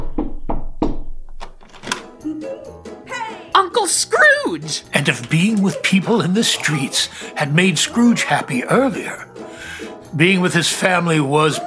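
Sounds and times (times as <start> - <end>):
hollow knocking on the door of a house: 0.0 - 1.2
speech: 2.3 - 3.0, 3.8 - 11.6.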